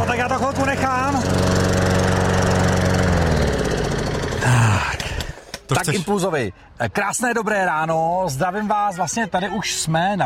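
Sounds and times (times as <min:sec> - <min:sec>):
lawn mower engine running: 0:00.0 - 0:05.5
speech: 0:00.2 - 0:01.9, 0:05.7 - 0:10.2.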